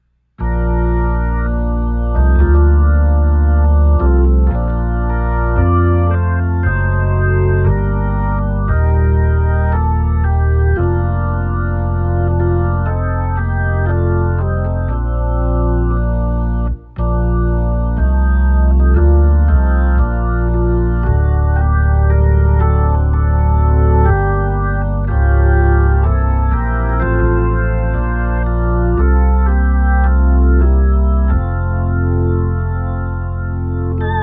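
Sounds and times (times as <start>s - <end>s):
hymn on a Hammond organ: 0.4s - 34.2s.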